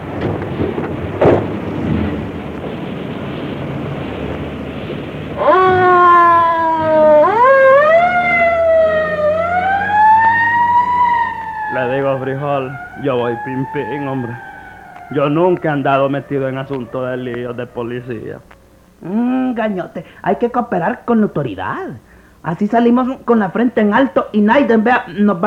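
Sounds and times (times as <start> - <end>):
low vehicle rumble: 0.0 - 20.9
police patrol car siren wailing: 1.5 - 19.6
speech: 13.0 - 14.5, 15.1 - 25.4.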